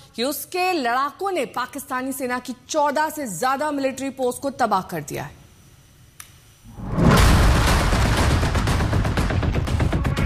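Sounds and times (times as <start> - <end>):
speech: 0.2 - 5.4
loud explosion blast: 6.7 - 9.6.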